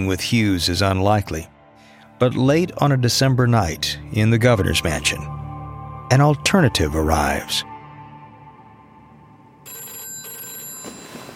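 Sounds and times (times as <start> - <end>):
speech: 0.0 - 1.6, 2.2 - 5.4, 6.1 - 7.7
telephone bell ringing in a governor's mansion: 9.6 - 11.3.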